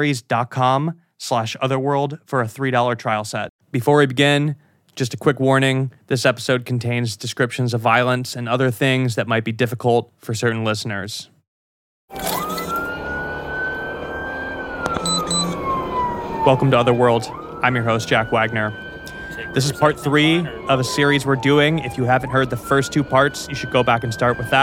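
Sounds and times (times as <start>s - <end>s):
speech: 0.0s - 11.3s, 12.1s - 12.5s, 16.4s - 18.8s, 19.4s - 24.6s
police car siren wailing on body camera audio as officers rush to a call: 12.1s - 24.6s.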